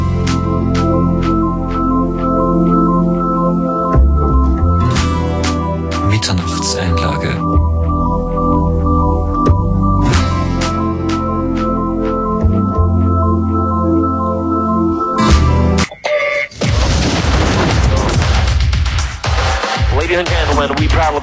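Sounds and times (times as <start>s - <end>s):
sustained droning tonal electronic music bed: 0.0s - 16.0s, 17.2s - 21.2s
explosion sound effect: 16.5s - 19.1s.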